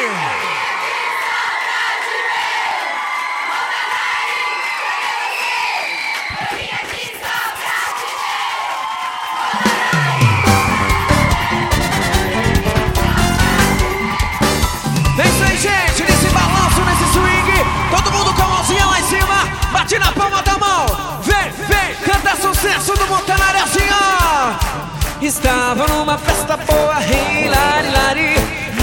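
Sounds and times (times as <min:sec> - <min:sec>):
large crowd shouting and cheering: 0:00.0 - 0:28.8
whoops: 0:02.8 - 0:06.6, 0:08.3 - 0:12.1, 0:13.4 - 0:20.2.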